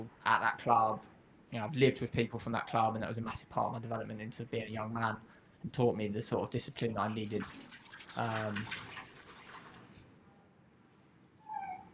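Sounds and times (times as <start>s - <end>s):
speech: 0.0s - 8.9s
dog shaking itself off with its lead on: 7.1s - 10.0s
dog giving a short high whine: 11.4s - 11.9s.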